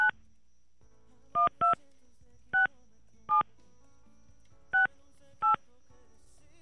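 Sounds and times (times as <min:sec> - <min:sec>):
dual-tone telephone keypad beeps: 0:01.4 - 0:01.8, 0:04.7 - 0:05.6.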